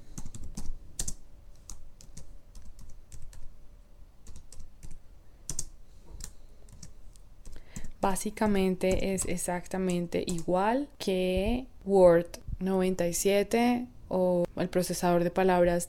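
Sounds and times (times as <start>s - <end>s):
typing on a computer keyboard into a document: 0.1s - 3.5s, 4.2s - 10.5s
speech: 8.0s - 15.8s.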